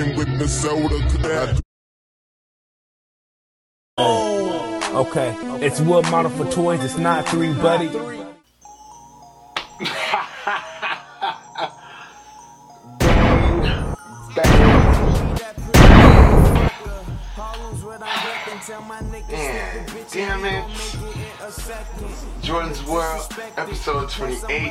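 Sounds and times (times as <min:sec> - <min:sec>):
speech: 0:00.0 - 0:01.6, 0:04.0 - 0:04.4, 0:05.0 - 0:08.2, 0:09.8 - 0:10.6, 0:18.0 - 0:24.6
tonal music-like background: 0:04.0 - 0:24.6
laughter: 0:09.8 - 0:11.9
loud harsh gunshot sound effects: 0:13.0 - 0:16.8.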